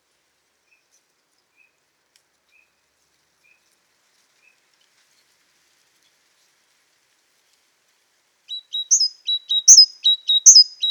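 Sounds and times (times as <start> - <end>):
great tit Parus major calling: 8.6 - 10.8.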